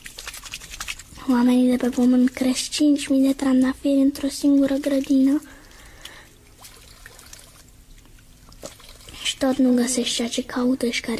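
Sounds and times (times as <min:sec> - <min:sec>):
thin stream of drinking water pouring into a container: 0:00.0 - 0:02.5, 0:06.5 - 0:09.4
speech: 0:01.3 - 0:05.6, 0:09.4 - 0:11.1.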